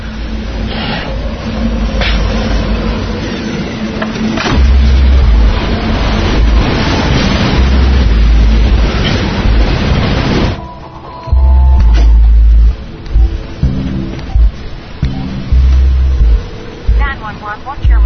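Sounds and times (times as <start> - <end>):
truck engine pulling into garage: 0.0 - 18.0.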